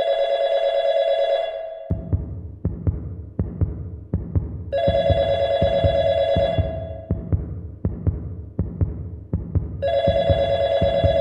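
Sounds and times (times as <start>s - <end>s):
telephone ringing in an apartment: 0.0s - 1.9s, 4.8s - 7.1s, 9.8s - 11.1s
deep heartbeat-like thumping: 1.9s - 11.1s.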